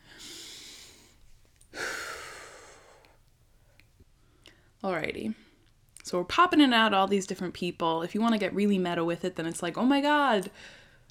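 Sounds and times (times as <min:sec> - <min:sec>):
person taking a deep breath: 0:00.0 - 0:03.2
speech: 0:04.8 - 0:05.4, 0:06.1 - 0:10.8.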